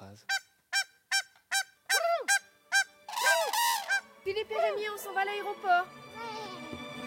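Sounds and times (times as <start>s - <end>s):
swan calling in loud nasal honks: 0.3s - 4.2s
speech: 4.3s - 6.5s.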